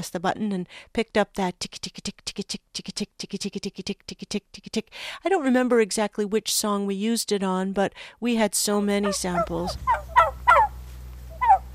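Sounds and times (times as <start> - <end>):
speech: 0.0 - 10.2
low steady hum: 0.0 - 11.7
turkey gobbling from a sound effects record: 9.0 - 11.7.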